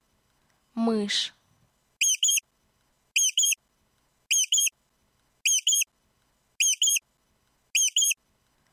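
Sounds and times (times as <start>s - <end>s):
mouse: 2.0s - 2.4s, 3.2s - 3.6s, 4.3s - 4.7s, 5.5s - 5.9s, 6.6s - 7.0s, 7.8s - 8.2s.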